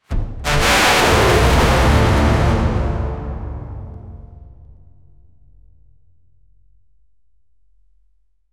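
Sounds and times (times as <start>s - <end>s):
extremely loud fortississimo brass: 0.4s - 4.8s.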